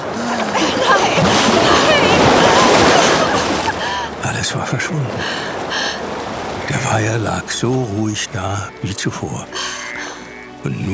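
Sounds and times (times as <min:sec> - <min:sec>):
laughter: 0:00.0 - 0:06.0
wave rushing in and splashing: 0:00.0 - 0:10.7
speech: 0:04.5 - 0:05.6, 0:06.9 - 0:09.6, 0:10.6 - 0:10.9.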